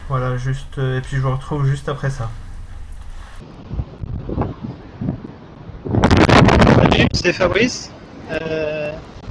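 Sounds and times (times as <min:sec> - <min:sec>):
sea waves crashing against a seawall: 0:00.0 - 0:03.4
strong wind buffeting the microphone: 0:00.0 - 0:08.3
speech: 0:00.1 - 0:02.4, 0:07.1 - 0:09.1.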